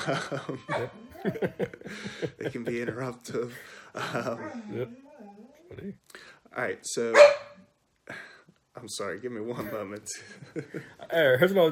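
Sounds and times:
laughter: 0.0s - 4.9s, 9.6s - 11.1s
speech: 0.0s - 7.5s, 8.1s - 11.7s
dog barking excitedly: 7.1s - 7.6s.

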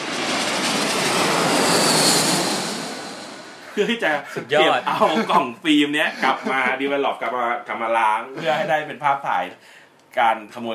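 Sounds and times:
airplane with tail hook roaring past overhead: 0.0s - 3.8s
laughter: 3.8s - 7.0s, 8.3s - 8.9s
speech: 3.8s - 10.7s.

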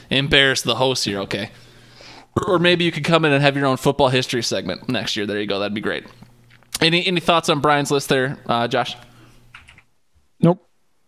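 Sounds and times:
speech: 0.1s - 1.7s, 2.4s - 9.1s, 10.4s - 10.7s
soft computer keyboard clicks: 9.5s - 9.9s.

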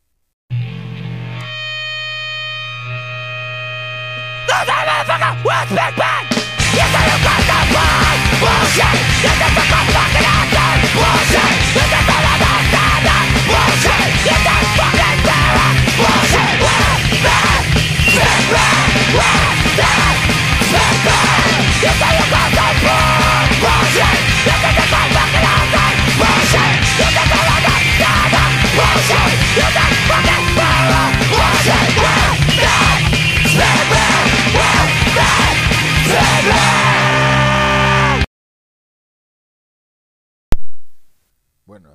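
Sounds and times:
distorted guitars: 0.5s - 38.3s, 40.6s - 41.2s
fast chaotic hardcore punk song: 0.5s - 38.3s
yelled vocals: 4.4s - 38.3s
speech: 5.4s - 6.2s
brief click: 40.5s - 41.1s.

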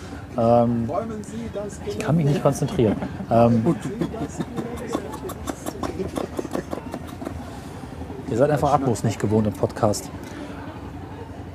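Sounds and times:
passing boat engine rumbling: 0.0s - 11.5s
voices: 0.0s - 11.5s
speech: 0.4s - 5.1s, 8.3s - 10.3s
people chuckling: 2.1s - 8.2s.

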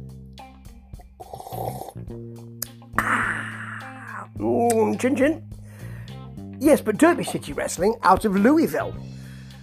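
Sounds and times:
person slurping tea: 1.2s - 2.0s
speech: 1.6s - 3.6s, 4.4s - 5.5s, 6.6s - 9.2s.

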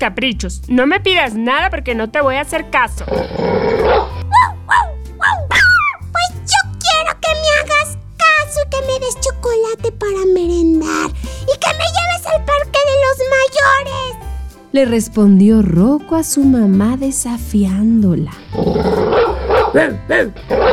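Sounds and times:
speech: 0.0s - 4.1s, 11.6s - 20.7s
steady low rhythmic backing: 0.0s - 20.7s
small dog barking and whimpering: 3.8s - 6.0s, 19.1s - 20.7s.

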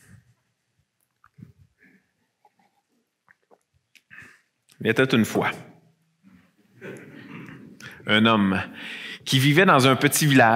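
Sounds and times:
speaker taking a small sip of drink: 1.1s - 4.8s
speech: 4.8s - 5.7s, 8.1s - 10.5s.

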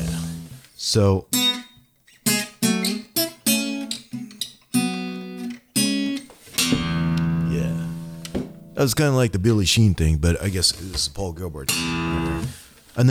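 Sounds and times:
new acoustic guitar playing a solo passage: 0.0s - 9.0s, 11.7s - 13.0s
speech: 0.8s - 1.4s, 8.8s - 13.0s
sharply plucked, ringing acoustic guitar notes: 1.3s - 8.9s, 11.7s - 12.6s
sustained strummed acoustic guitar chord: 2.3s - 8.8s, 11.7s - 12.6s.

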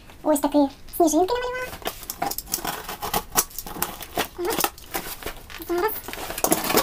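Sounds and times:
speech: 0.3s - 1.6s
parcel packaging crinkling and ripping as it is torn open: 1.6s - 6.8s.

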